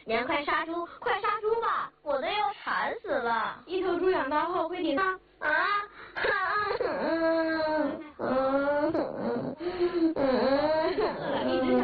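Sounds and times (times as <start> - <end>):
speech: 0.0 - 5.9
child crying in drawn-out wailing sobs: 6.2 - 11.8.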